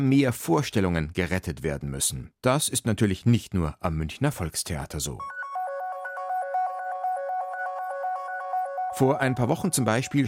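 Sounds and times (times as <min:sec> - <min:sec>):
speech: 0:00.0 - 0:05.4, 0:09.0 - 0:10.2
actor's mobile phone ringtone with synthesized electronic melody: 0:05.2 - 0:10.2.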